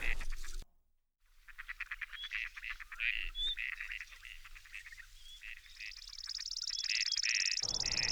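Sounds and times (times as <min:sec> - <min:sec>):
chipping sparrow singing a dry rapid trill: 0:01.6 - 0:08.0.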